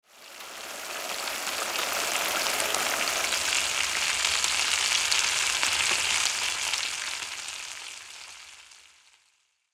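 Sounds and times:
pan frying slow cooking: 0:00.1 - 0:09.2.

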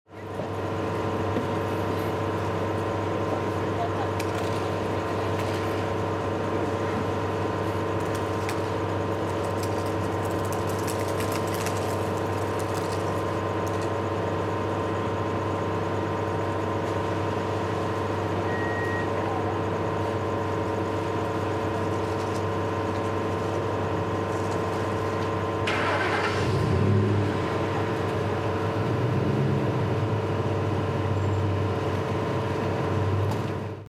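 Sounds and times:
outdoor fish market ambience: 0:00.1 - 0:33.8.

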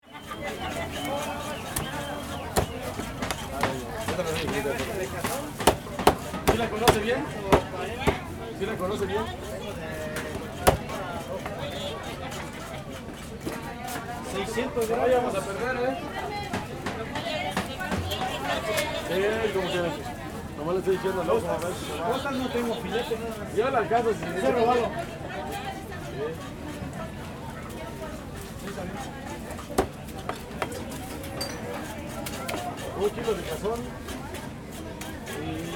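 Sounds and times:
busy fish market crowd: 0:00.0 - 0:35.7.

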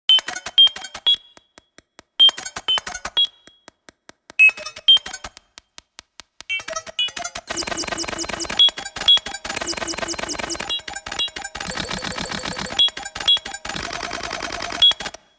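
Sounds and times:
futuristic data calculation sounds: 0:02.2 - 0:03.3, 0:04.4 - 0:05.4, 0:06.5 - 0:15.3.

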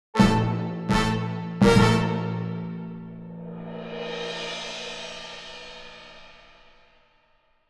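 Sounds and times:
epic game over sound: 0:00.2 - 0:02.4.

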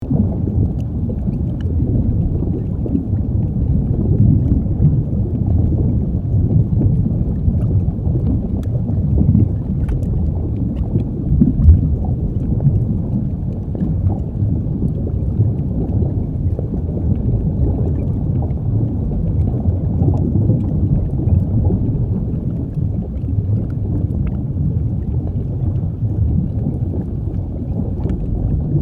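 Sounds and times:
volcanic lava lake ambience: 0:00.0 - 0:28.8.

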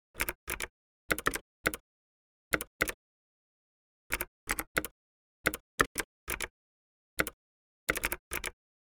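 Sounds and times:
optical keyboard typing slowly: 0:00.2 - 0:01.8, 0:04.1 - 0:04.9, 0:05.5 - 0:06.5, 0:07.2 - 0:08.6.

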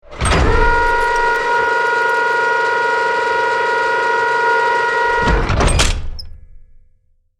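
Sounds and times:
artillery tank turret moving and turning mechanical noise: 0:00.0 - 0:06.4.

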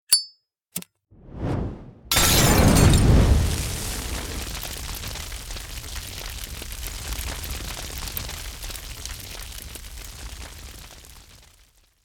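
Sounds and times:
fire from Molotov cocktail burning: 0:01.2 - 0:12.0
Molotov cocktail glass bottle breaking: 0:02.1 - 0:03.8.

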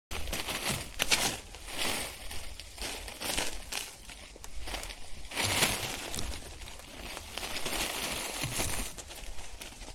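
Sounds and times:
foliage movement in garden brush leaves: 0:00.1 - 0:09.9.

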